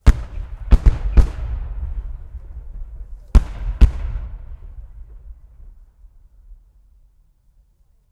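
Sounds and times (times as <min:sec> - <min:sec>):
tank battle cannon fire: 0:00.0 - 0:05.4.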